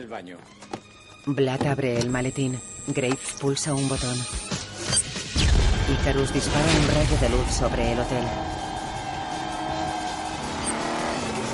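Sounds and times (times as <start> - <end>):
speech: 0.0 - 4.7, 5.9 - 8.6
road noise: 6.7 - 11.5
car accelerating: 7.2 - 11.5.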